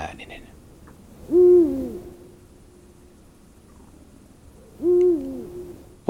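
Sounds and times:
Eurasian eagle-owl giving deep booming hoots: 0.4s - 3.0s, 3.8s - 6.0s.

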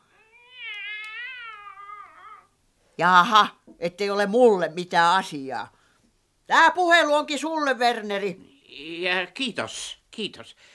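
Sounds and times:
cat meowing over a phone: 0.3s - 2.5s
speech: 3.0s - 5.8s, 6.5s - 10.7s.

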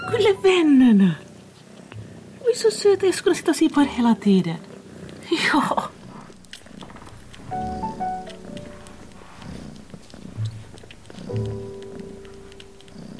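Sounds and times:
eleven-day-old kitten purring: 0.0s - 13.1s
speech: 0.2s - 1.2s, 2.5s - 4.7s, 5.3s - 6.0s
eleven-day-old kittens mewing: 5.1s - 13.1s.

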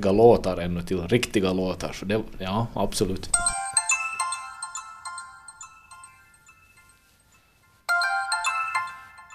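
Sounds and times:
speech: 0.0s - 3.5s
mobile phone ringtone with bright repeating electronic melody: 3.4s - 9.3s.

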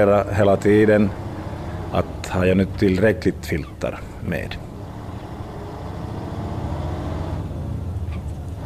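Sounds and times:
speech: 0.0s - 1.2s, 1.9s - 4.7s
road noise: 0.0s - 8.6s
truck driving south with heavy engine rumble: 0.0s - 8.6s
faint high squeaks: 3.5s - 3.9s.

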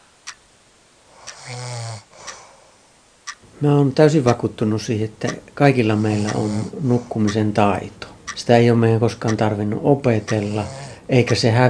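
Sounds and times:
person snoring: 1.1s - 2.8s, 5.9s - 7.3s, 10.1s - 11.1s
speech: 1.5s - 1.7s, 3.6s - 11.6s.

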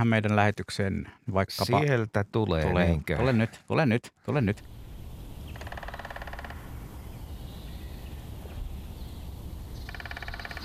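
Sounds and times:
speech: 0.0s - 4.8s
Lesser Spotted Woodpecker drumming: 4.6s - 7.2s, 9.6s - 10.6s.

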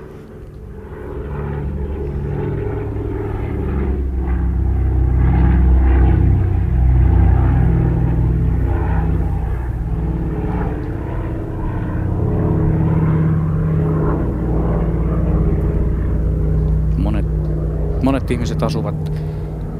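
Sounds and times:
DC-3 twin-engine propeller airliner radial engines rumbling: 0.0s - 19.7s
speech: 18.3s - 19.4s.

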